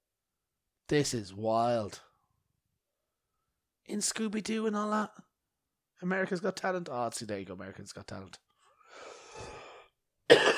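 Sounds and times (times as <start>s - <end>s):
speech: 0.9s - 2.1s, 3.9s - 5.3s, 6.0s - 8.4s
breathing: 8.5s - 10.0s
person coughing: 10.3s - 10.5s.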